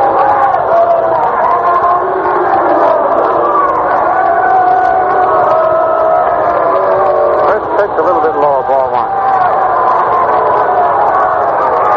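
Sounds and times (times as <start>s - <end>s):
large baseball stadium crowd booing: 0.0s - 11.9s.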